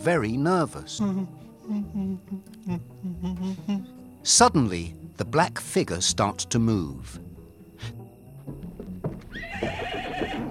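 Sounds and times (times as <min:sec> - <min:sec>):
speech: 0:00.0 - 0:07.2
hoof clops on hard ground: 0:08.4 - 0:10.4
big black horse neighing: 0:09.3 - 0:10.4.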